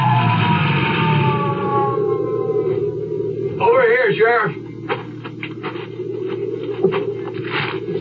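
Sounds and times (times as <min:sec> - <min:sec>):
wavering cry: 0:00.0 - 0:04.8
rumbling engine: 0:00.0 - 0:08.0
sheriff's Jeep siren whining: 0:00.0 - 0:08.0.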